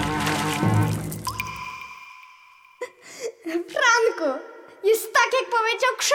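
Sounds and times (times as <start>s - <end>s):
person jumping into a well and landing in water: 0.0s - 2.0s
faint ringing drips in a well: 1.3s - 3.0s
speech: 4.2s - 6.1s.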